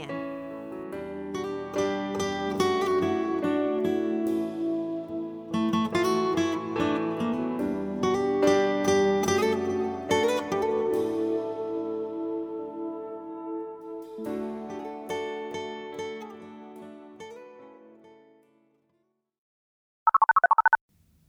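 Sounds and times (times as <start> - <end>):
soft instrumental music: 0.0 - 18.1
telephone ringing with an electronic trill: 20.1 - 20.8.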